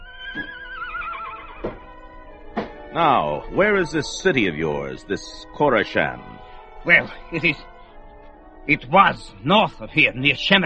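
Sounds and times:
saddled horse neighing: 0:00.0 - 0:01.9
speech: 0:02.9 - 0:07.7, 0:08.7 - 0:10.6.

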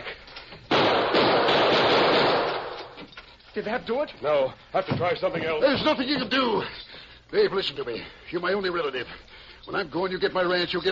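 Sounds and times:
gunshots fired at a steel staple holding a chain: 0:00.7 - 0:02.8
speech: 0:03.6 - 0:10.9.

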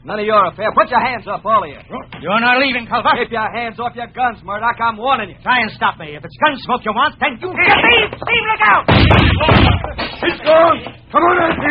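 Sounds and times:
raised male voices talking urgently: 0:00.0 - 0:11.6
speech: 0:00.0 - 0:11.6
lamp being smashed as a western radio drama sound effect: 0:08.9 - 0:10.3.

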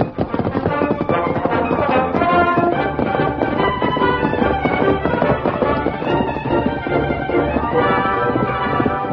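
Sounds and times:
ridden horse's hooves at a steady rolling lope: 0:00.0 - 0:09.1.

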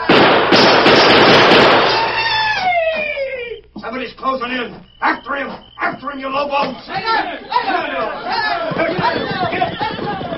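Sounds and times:
silver-mounted revolver shots fired at bottles on a table: 0:00.0 - 0:02.5
speech: 0:04.4 - 0:09.8.

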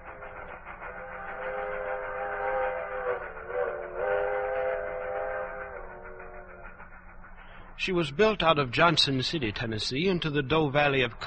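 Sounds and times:
steam locomotive whistle: 0:00.0 - 0:08.5
hard-working steam locomotive engine rumbling: 0:00.0 - 0:11.2
speech: 0:07.9 - 0:11.2.

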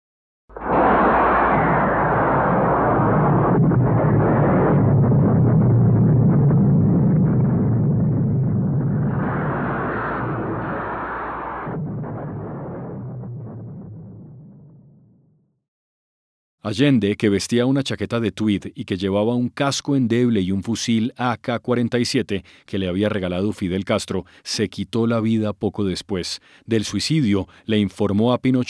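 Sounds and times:
explosions of bombs dropped on a government headquarters building: 0:00.5 - 0:15.3
British Hawker Hunter fighter jets roaring: 0:00.6 - 0:06.3, 0:07.3 - 0:13.0
speech: 0:16.7 - 0:28.6.

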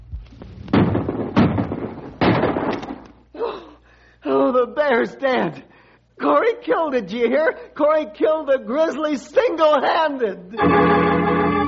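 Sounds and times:
rifle shots fired at a charging grizzly bear: 0:00.7 - 0:03.2
speech: 0:04.6 - 0:11.2.

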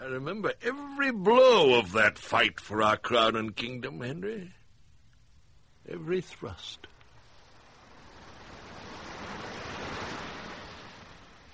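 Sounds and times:
speech: 0:00.1 - 0:04.6, 0:05.9 - 0:06.9
sea waves breaking on a shore: 0:07.2 - 0:11.5.

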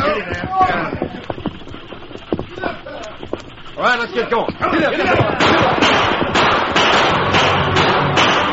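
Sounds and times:
hooves of a horse-drawn stagecoach clip-clopping on a rutted trail: 0:00.0 - 0:08.4
speech: 0:03.8 - 0:06.1.

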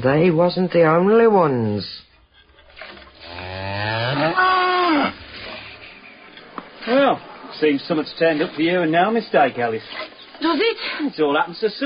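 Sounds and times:
speech: 0:00.0 - 0:02.1, 0:06.8 - 0:11.8
cow mooing: 0:03.1 - 0:05.9.

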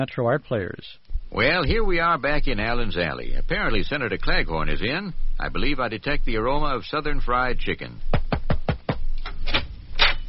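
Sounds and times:
speech: 0:00.0 - 0:08.2
knocking on a door: 0:08.1 - 0:09.1.

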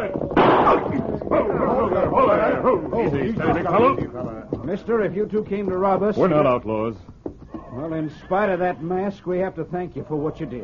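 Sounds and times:
gunshots in a western shootout: 0:00.0 - 0:02.5
speech: 0:02.7 - 0:07.2, 0:07.8 - 0:10.6.

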